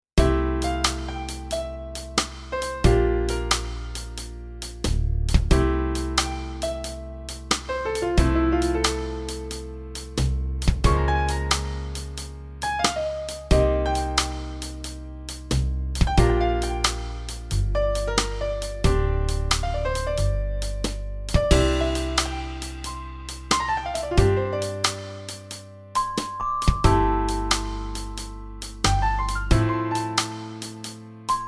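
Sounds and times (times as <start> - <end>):
drums: 0.2 - 31.4.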